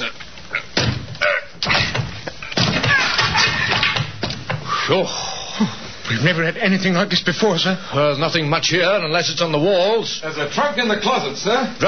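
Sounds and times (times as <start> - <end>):
locked room door being rammed with a shoulder to force it open: 0.8 - 4.6
speech: 4.9 - 11.8.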